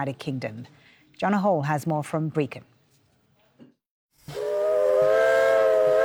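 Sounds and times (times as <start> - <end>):
speech: 0.0 - 2.7
steam train whistle on the Brecon and Merthyr railway line in Wales: 4.2 - 6.0.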